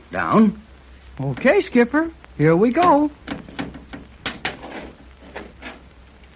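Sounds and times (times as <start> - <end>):
speech: 0.1 - 0.6, 1.2 - 3.2
heavy door scraping and grinding as it is pushed downward: 3.3 - 5.9.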